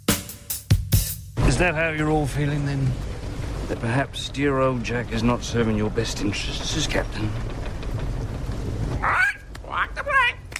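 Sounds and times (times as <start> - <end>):
low rumble: 1.4 - 10.5
speech: 1.6 - 3.1, 3.7 - 7.5
bird squawking: 8.9 - 10.4.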